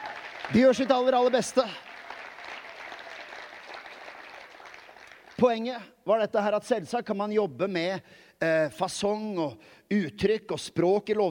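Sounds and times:
crowd applauding: 0:00.0 - 0:05.6
speech: 0:00.5 - 0:01.9, 0:05.4 - 0:11.2.

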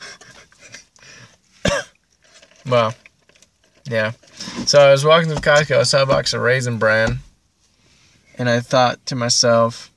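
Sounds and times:
quiet rustling: 0:00.3 - 0:08.4
sharp cough: 0:01.6 - 0:01.9
speech: 0:02.6 - 0:03.0, 0:03.9 - 0:07.2, 0:08.4 - 0:09.9.

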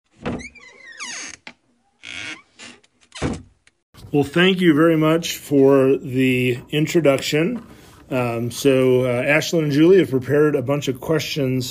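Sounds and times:
door thumping and rattling as it swings and shuts: 0:00.1 - 0:00.8, 0:03.2 - 0:03.6
door creaking open with a drawn-out squeal: 0:00.1 - 0:03.8
speech: 0:04.1 - 0:11.6.

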